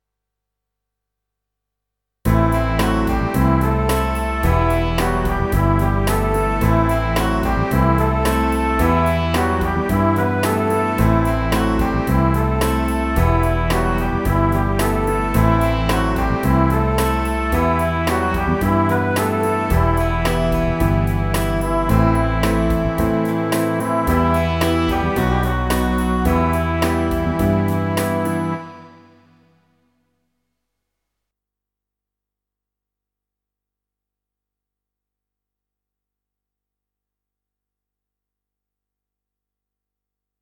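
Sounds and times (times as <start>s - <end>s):
big ballad French horns riff in E minor: 2.3s - 29.5s.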